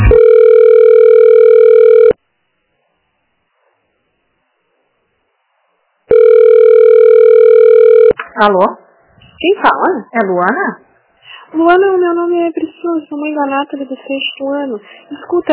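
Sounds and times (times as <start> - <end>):
ringback tone on a phone line while a call is transferred: 0.1 - 2.2, 6.1 - 8.1
speech: 8.4 - 10.9, 11.5 - 15.4.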